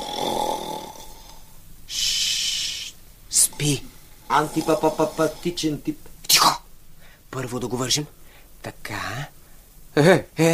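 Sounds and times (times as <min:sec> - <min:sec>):
man snoring loudly while sleeping: 0:00.0 - 0:05.9
speech: 0:03.6 - 0:06.6, 0:07.4 - 0:09.4, 0:10.0 - 0:10.5.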